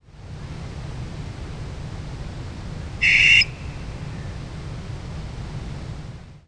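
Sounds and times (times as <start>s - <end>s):
low background hum: 0.0s - 6.4s
barn owl screech: 3.0s - 3.6s.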